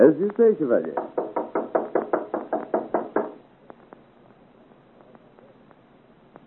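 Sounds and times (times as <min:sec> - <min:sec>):
speech: 0:00.1 - 0:01.2
loud heavy pounding on a door: 0:00.9 - 0:03.4.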